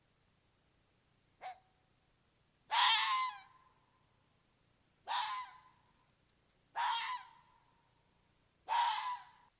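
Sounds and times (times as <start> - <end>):
red fox giving hoarse screaming barks: 2.7 - 3.6, 5.0 - 5.8, 6.7 - 7.5, 8.6 - 9.5.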